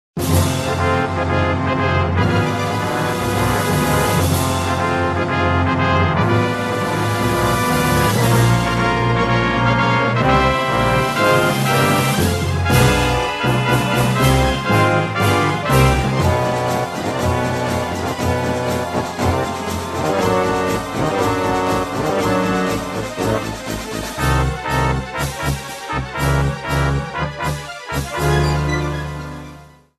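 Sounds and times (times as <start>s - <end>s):
game battle theme music: 0.2s - 29.8s.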